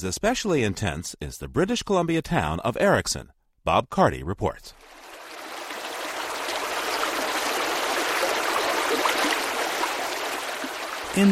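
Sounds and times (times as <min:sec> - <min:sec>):
speech: 0:00.0 - 0:05.0, 0:11.2 - 0:11.3
mountain creek gurgling through forest: 0:04.8 - 0:11.3.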